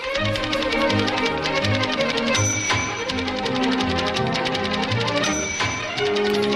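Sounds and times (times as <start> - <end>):
old typewriter keys clattering: 0.0 - 6.5
steady tonal background: 0.0 - 6.5.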